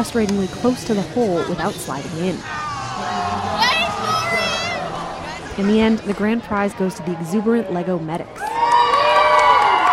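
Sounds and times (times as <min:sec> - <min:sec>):
speech: 0:00.0 - 0:03.8, 0:05.6 - 0:08.4
crowd of young voices clamoring: 0:00.0 - 0:09.9
excited cheer from young voices: 0:02.5 - 0:05.0, 0:08.4 - 0:09.9.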